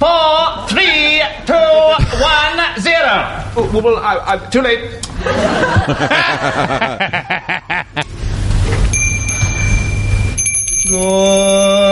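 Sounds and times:
steady rumble: 0:00.0 - 0:11.9
speech: 0:03.6 - 0:08.1, 0:10.9 - 0:11.7
rhythmic laughter: 0:05.2 - 0:08.1
bell ringing with bright sustained tones: 0:08.9 - 0:11.9.

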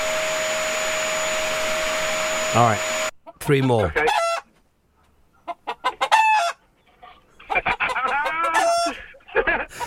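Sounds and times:
vacuum cleaner running: 0:00.0 - 0:03.1
speech: 0:02.5 - 0:04.1
cockerel clucking: 0:03.1 - 0:09.8
cockerel crowing: 0:04.0 - 0:04.5, 0:07.6 - 0:09.1.

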